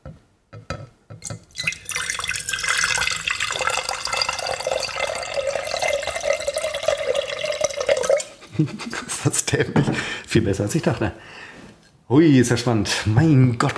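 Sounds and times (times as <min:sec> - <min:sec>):
water pouring from a tap into a bathroom cleaning bucket: 0:01.5 - 0:08.4
laughter: 0:08.4 - 0:10.0
speech: 0:08.6 - 0:11.4, 0:12.1 - 0:13.7.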